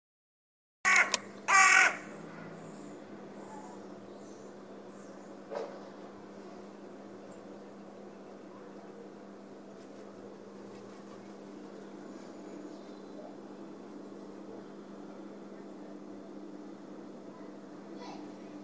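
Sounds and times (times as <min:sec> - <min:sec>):
bird harsh rasping caws: 0:00.9 - 0:02.6
steady low hum: 0:00.9 - 0:18.6.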